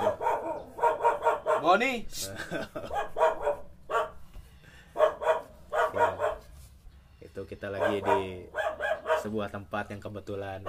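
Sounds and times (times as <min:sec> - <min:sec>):
dog barking in short sharp yaps: 0:00.0 - 0:01.8, 0:02.8 - 0:04.2, 0:05.0 - 0:06.5, 0:07.8 - 0:09.5
speech: 0:01.6 - 0:03.4, 0:07.6 - 0:08.6, 0:09.2 - 0:10.6
laughter: 0:02.2 - 0:03.0.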